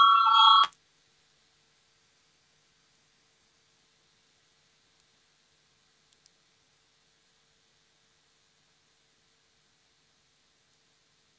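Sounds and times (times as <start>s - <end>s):
electronic bell in a parliament chamber calling members to a vote: 0.0s - 0.7s.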